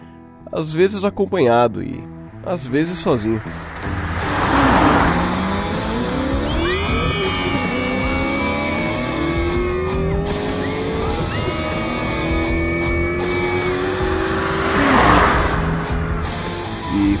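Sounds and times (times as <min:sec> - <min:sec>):
speech: 0:00.5 - 0:04.0
car engine roaring by at speed on a road at night: 0:02.0 - 0:17.1
car tires squealing and screeching: 0:02.2 - 0:17.1.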